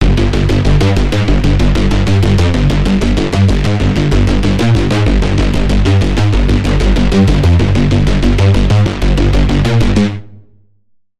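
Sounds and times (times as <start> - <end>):
deep bass wave: 0.0 - 10.9.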